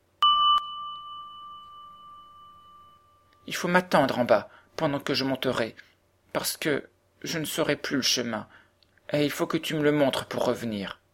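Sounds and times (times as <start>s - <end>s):
wall-mounted doorbell pulled hard by hand ringing: 0.2s - 3.5s
speech: 3.4s - 11.0s.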